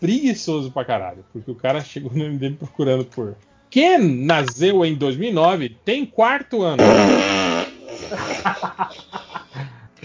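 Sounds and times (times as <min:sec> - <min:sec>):
speech: 0:00.0 - 0:07.4
loud buzzy fart: 0:06.8 - 0:08.4
laughter: 0:07.8 - 0:10.0.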